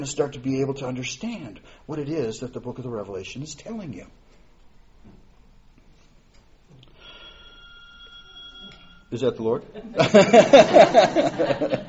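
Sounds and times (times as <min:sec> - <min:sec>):
speech: 0:00.0 - 0:04.2, 0:09.1 - 0:11.8
faint room noise: 0:00.0 - 0:11.8
telephone ringing with an electronic trill: 0:07.0 - 0:09.2
laughter: 0:09.7 - 0:11.8.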